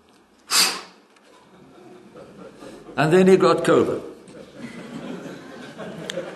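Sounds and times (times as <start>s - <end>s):
voice imitating a preacher with a forceful blowing exhale: 0.5s - 1.0s
laughter: 1.4s - 6.3s
speech: 3.0s - 4.1s.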